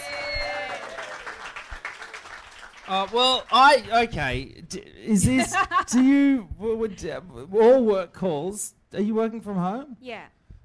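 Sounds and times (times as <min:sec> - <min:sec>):
applause from a small group: 0:00.0 - 0:03.8
speech: 0:02.9 - 0:10.4.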